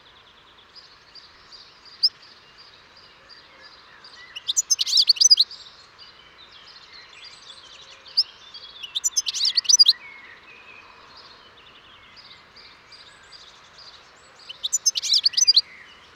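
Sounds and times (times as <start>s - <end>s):
European goldfinch Carduelis carduelis twittering: 4.4s - 5.4s, 8.9s - 9.9s, 14.5s - 15.6s.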